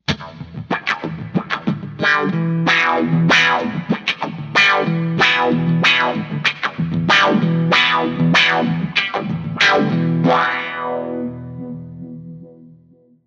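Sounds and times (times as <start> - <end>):
mega wah effect: 0.1 - 12.8.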